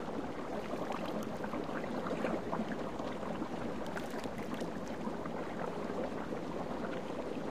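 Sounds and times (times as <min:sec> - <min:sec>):
jacuzzi: 0:00.0 - 0:07.4.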